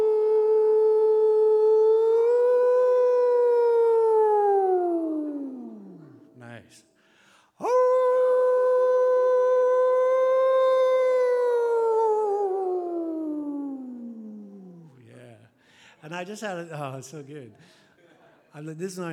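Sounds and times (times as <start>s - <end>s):
person howling imitating a wolf: 0.0s - 6.2s, 7.6s - 14.9s
speech: 16.2s - 17.8s, 18.6s - 19.1s.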